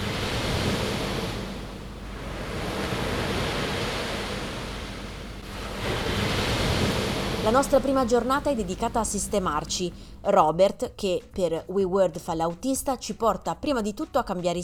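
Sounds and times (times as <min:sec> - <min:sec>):
ocean waves breaking on shore: 0:00.0 - 0:10.2
speech: 0:07.5 - 0:14.6.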